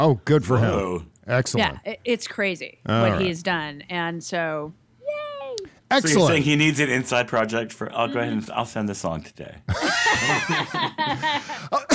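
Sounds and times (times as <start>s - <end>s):
speech: 0.0s - 4.8s, 5.9s - 11.9s
short breathy laugh-like vocal bursts: 9.7s - 11.9s
sharp cough: 11.4s - 11.9s.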